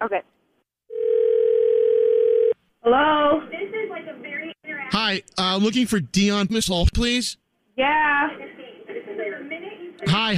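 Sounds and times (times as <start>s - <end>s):
speech: 0.0s - 0.3s, 2.9s - 3.5s, 5.0s - 8.1s, 10.0s - 10.3s
telephone dial tone while placing a call: 0.9s - 2.6s.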